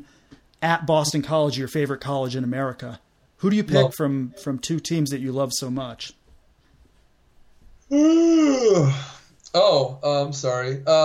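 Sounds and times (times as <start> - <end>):
speech: 0.6 - 6.2, 7.9 - 11.0
person yawning: 7.9 - 9.3.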